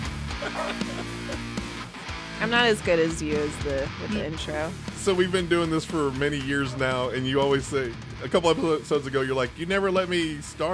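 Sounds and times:
several dogs barking excitedly: 0.3s - 1.7s, 6.4s - 7.2s
several dogs whimpering and whining excitedly: 0.4s - 1.4s
laughter: 0.4s - 1.6s, 5.7s - 9.8s
speech: 0.4s - 1.6s, 2.4s - 10.7s.

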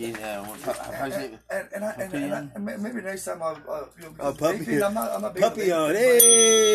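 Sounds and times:
speech: 0.0s - 6.7s
hand bell ringing: 6.2s - 6.7s.

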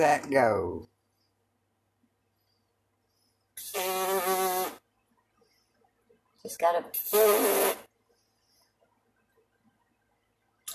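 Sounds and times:
speech: 0.0s - 0.9s, 6.4s - 7.9s
sustained raspy lip buzz: 3.6s - 4.8s, 7.0s - 7.9s.

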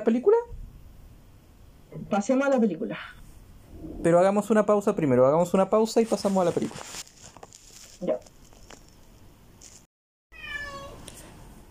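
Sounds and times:
speech: 0.0s - 0.5s, 2.0s - 3.2s, 3.8s - 7.0s, 8.0s - 8.3s
hiss: 0.0s - 9.9s
cat crying out with a drawn-out meow: 10.3s - 11.1s.

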